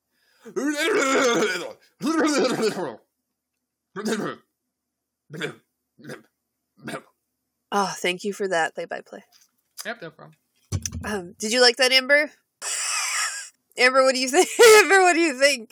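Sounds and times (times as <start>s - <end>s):
speech: 0.4s - 1.0s, 2.6s - 3.0s, 4.0s - 4.4s, 5.3s - 6.2s, 7.7s - 10.4s, 11.0s - 12.4s, 13.8s - 15.6s
coughing into a microphone: 0.7s - 1.7s, 4.0s - 4.5s, 5.3s - 7.1s.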